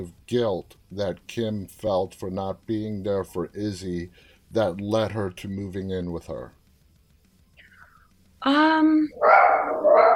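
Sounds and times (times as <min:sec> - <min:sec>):
speech: 0:00.0 - 0:06.6, 0:08.4 - 0:10.1
dog barking: 0:09.2 - 0:10.1.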